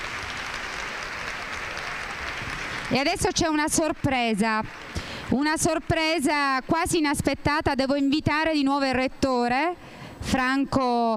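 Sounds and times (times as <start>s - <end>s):
audience applause for first-grade schoolchildren at a school ceremony: 0.0s - 6.7s
speech: 2.9s - 11.1s.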